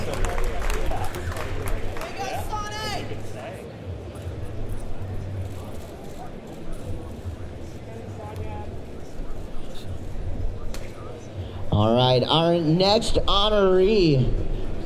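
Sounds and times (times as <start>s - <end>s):
large audience clapping and cheering at a wakeboarding Hall of Fame ceremony: 0.0s - 2.8s
speech: 11.8s - 14.4s.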